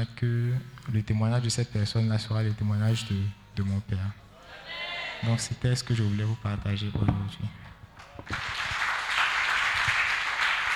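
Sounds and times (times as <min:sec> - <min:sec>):
speech: 0:00.1 - 0:04.3, 0:05.2 - 0:07.6, 0:08.2 - 0:08.7
church congregation applauding: 0:08.0 - 0:10.7.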